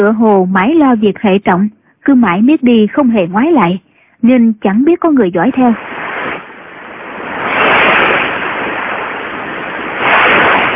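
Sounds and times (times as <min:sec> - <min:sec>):
speech: 0:00.0 - 0:05.9
sea waves crashing against a rocky shore: 0:05.8 - 0:10.7.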